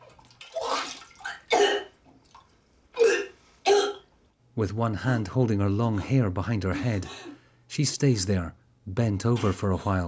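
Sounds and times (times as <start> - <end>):
woman retching and vomiting into a toilet bowl: 0.3 - 4.0
speech: 4.6 - 10.0.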